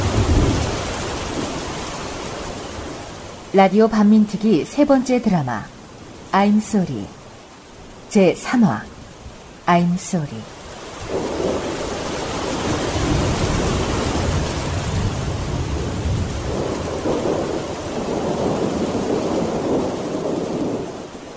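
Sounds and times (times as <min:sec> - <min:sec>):
low rumbles of thunder: 0:00.0 - 0:03.3, 0:10.9 - 0:21.3
heavy rain pouring: 0:00.0 - 0:21.3
speech: 0:03.5 - 0:07.2, 0:08.1 - 0:08.9, 0:09.7 - 0:11.3.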